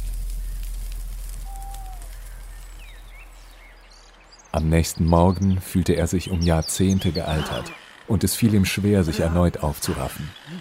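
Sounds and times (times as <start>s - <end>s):
campfire crackling: 0.0s - 4.6s
bird whistles: 1.4s - 3.1s
speech: 4.5s - 10.5s.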